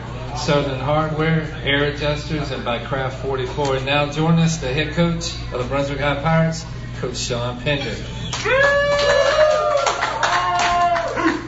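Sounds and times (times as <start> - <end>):
speech: 0.4 - 9.2
studio audience applause welcoming a high school head coach: 8.3 - 11.4.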